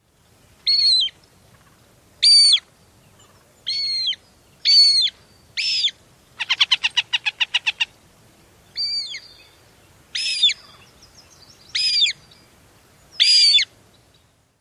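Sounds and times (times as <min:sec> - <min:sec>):
female Northern Harrier squeals and chatter: 0:03.7 - 0:07.9, 0:08.8 - 0:09.3, 0:10.2 - 0:10.6, 0:11.7 - 0:12.2, 0:13.2 - 0:13.7.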